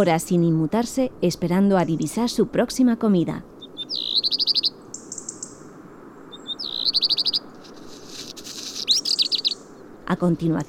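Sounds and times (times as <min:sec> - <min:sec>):
speech: 0:00.0 - 0:03.5, 0:10.2 - 0:10.6
black redstart calling with rapid high metallic chirps: 0:03.5 - 0:07.9, 0:08.5 - 0:09.9
steady outdoor hiss: 0:03.5 - 0:10.1.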